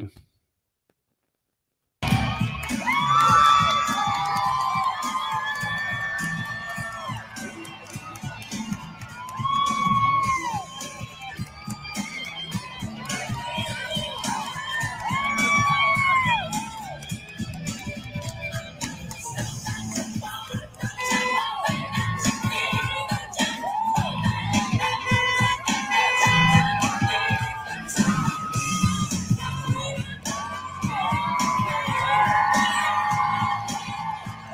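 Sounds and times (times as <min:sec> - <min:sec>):
large outdoor crowd cheering and shouting at a pride parade: 0:02.0 - 0:34.5
high whoops: 0:02.3 - 0:07.5, 0:09.0 - 0:12.1, 0:13.0 - 0:17.0, 0:21.0 - 0:29.3, 0:30.3 - 0:34.5.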